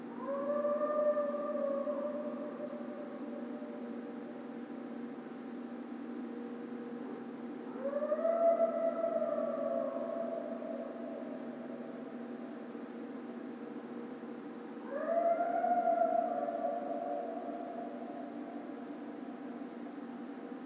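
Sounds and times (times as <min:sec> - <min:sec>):
coyote Canis latrans howling: 0:00.1 - 0:04.5, 0:07.7 - 0:13.0, 0:14.8 - 0:20.6.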